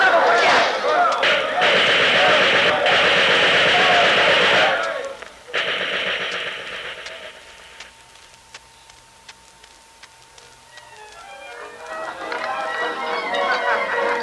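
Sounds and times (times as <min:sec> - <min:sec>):
voices: 0:00.0 - 0:14.2
machine gun firing sustained bursts during a bank raid: 0:00.4 - 0:08.0.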